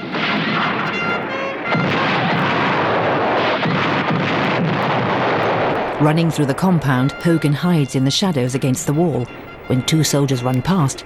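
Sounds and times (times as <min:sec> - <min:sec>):
gunfire from fighters on a roof: 0:00.0 - 0:07.3
coal oil bombs exploding on impact: 0:00.0 - 0:09.4
rumbling: 0:00.0 - 0:11.0
sharp cracks: 0:00.0 - 0:11.0
speech: 0:06.0 - 0:11.0.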